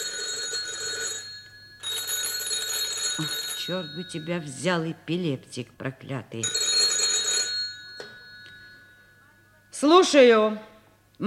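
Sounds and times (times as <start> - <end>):
old-style telephone bell ringing: 0.0 - 4.7, 6.4 - 9.7
speech: 3.2 - 6.6, 9.8 - 11.2.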